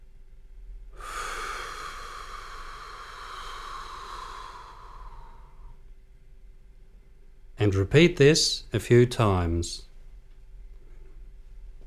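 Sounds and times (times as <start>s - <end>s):
slow long exhale through the mouth during a guided breathing exercise: 0.9s - 5.8s
speech: 7.6s - 9.9s.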